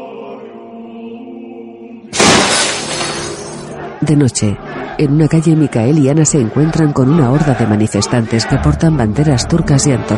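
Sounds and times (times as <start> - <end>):
falling glass shards and debris: 2.2 - 3.7
glass shattering as a crowd smashes market stalls in a bazaar: 2.2 - 3.7
speech: 4.0 - 10.1.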